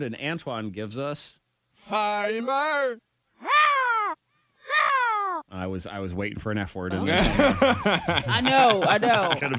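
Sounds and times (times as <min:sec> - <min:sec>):
speech: 0:00.0 - 0:03.6, 0:05.5 - 0:09.5
person imitating crow caws: 0:03.4 - 0:05.5
laughter: 0:06.9 - 0:09.5.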